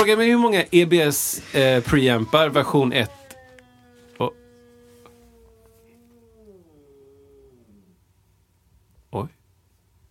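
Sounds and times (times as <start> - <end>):
speech: 0.0 - 3.2, 4.2 - 4.4, 9.1 - 9.4
cat yowling: 2.2 - 8.0.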